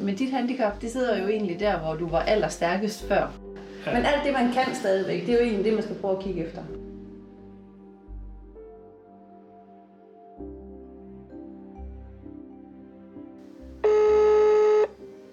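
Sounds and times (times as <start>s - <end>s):
speech: 0.0s - 6.9s
loud buzzy beep: 13.8s - 14.9s
telephone dialing tones: 13.8s - 14.9s.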